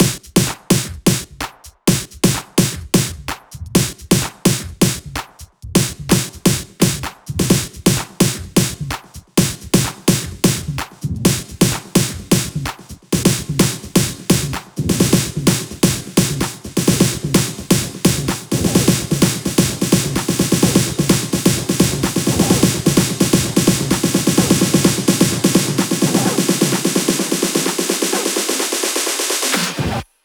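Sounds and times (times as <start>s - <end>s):
drum fill: 0.0s - 30.0s.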